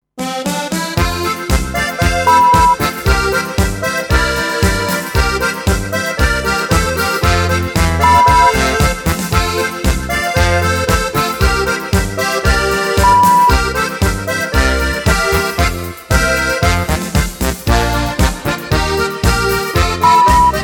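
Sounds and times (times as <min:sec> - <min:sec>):
alpine Bavarian folk dance music in E: 0:00.2 - 0:20.6.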